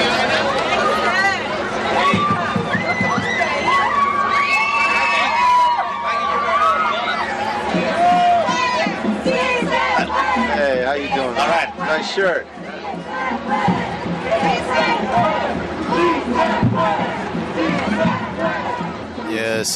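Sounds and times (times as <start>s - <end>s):
large marching crowd cheering and shouting on a freeway bridge: 0.0s - 19.7s
people whooping in a marching crowd: 2.0s - 8.9s
speech: 12.0s - 12.6s, 19.4s - 19.7s.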